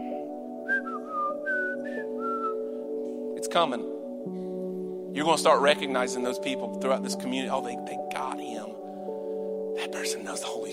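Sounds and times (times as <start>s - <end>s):
person whistling a melody: 0.0s - 2.8s
sustained tonal backdrop: 0.0s - 10.7s
speech: 3.4s - 4.4s, 5.2s - 8.8s, 9.8s - 10.7s.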